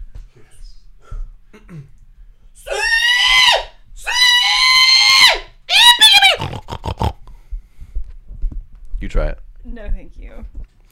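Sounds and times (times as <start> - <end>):
speech: 1.5 - 2.0, 9.1 - 10.6
person doing a loud drawn-out hog call: 2.6 - 7.2.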